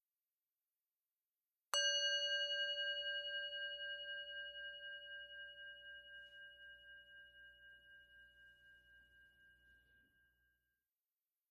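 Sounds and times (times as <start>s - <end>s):
meditation bell struck and ringing: 1.8s - 10.3s.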